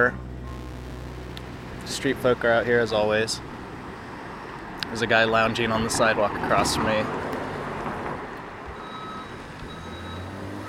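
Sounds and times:
speech: 0.0 - 0.2, 1.9 - 3.5, 4.9 - 7.2
delivery truck high reversing beeps: 0.0 - 1.4, 8.7 - 10.6
constant rumble of street traffic and engine noise: 0.0 - 10.6.

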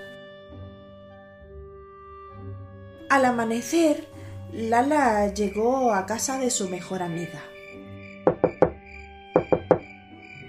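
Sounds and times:
speech: 3.1 - 7.5
knocking on a tree trunk: 8.3 - 8.8, 9.4 - 9.9.

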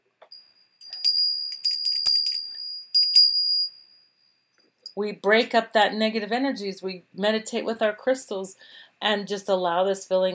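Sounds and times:
small high-pitched meditation bell ringing: 0.3 - 4.1
speech: 5.0 - 10.3.

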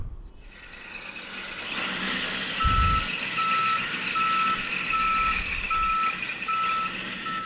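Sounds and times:
low thump: 0.0 - 0.3
garbage truck engine rumble: 0.0 - 7.4
garbage truck reversing alarm beeping: 2.6 - 7.4.

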